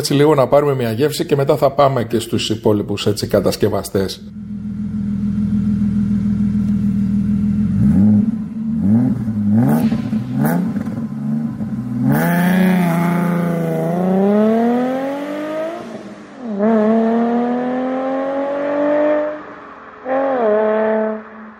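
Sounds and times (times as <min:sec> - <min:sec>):
speech: 0:00.0 - 0:04.4
Alfa Romeo GTV Twin Callaway Turbo twin-turbo sports car engine idling: 0:03.2 - 0:12.9
Alfa Romeo GTV Twin Callaway Turbo twin-turbo sports car engine revving: 0:04.3 - 0:21.5.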